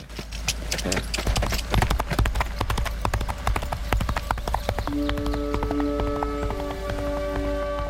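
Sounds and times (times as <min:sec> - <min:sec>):
zebra hooves galloping off down a road: 0:00.0 - 0:07.8
sustained musical tones: 0:04.9 - 0:07.8.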